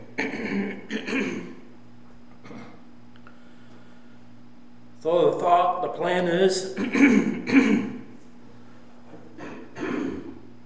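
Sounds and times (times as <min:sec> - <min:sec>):
person clearing throat with something stuck in it: 0:00.0 - 0:01.7, 0:02.4 - 0:02.8, 0:06.7 - 0:08.1, 0:09.3 - 0:10.5
faint low hum: 0:00.0 - 0:10.6
speech: 0:06.0 - 0:07.9.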